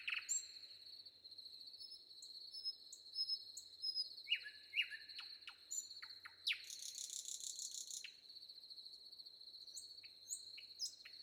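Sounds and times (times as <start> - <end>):
Common nightingale song: 0.0 - 0.6, 1.8 - 8.2, 9.8 - 11.2
wind: 0.0 - 11.2.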